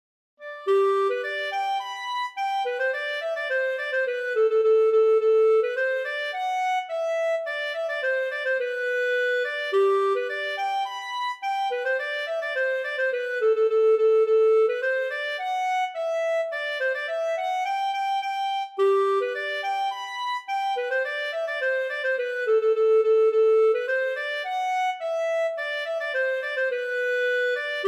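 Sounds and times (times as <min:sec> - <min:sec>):
polka music: 0:00.4 - 0:27.8.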